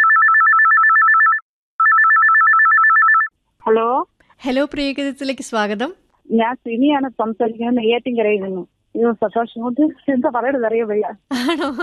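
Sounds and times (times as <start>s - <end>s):
telephone ringtone for an incoming listener call: 0.0s - 3.3s
speech: 3.7s - 11.8s.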